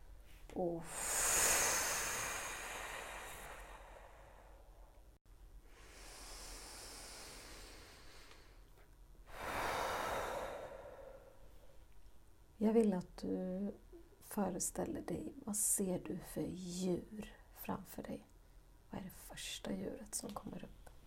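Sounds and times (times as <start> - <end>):
speech: 0.6 - 1.1, 12.6 - 18.3, 18.9 - 20.8
long deep breaths close to the microphone: 0.8 - 5.1, 5.7 - 11.8.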